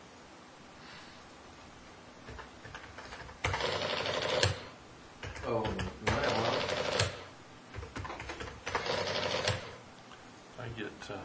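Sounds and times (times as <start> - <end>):
faint typing on a computer keyboard: 2.3 - 4.6, 5.2 - 9.7.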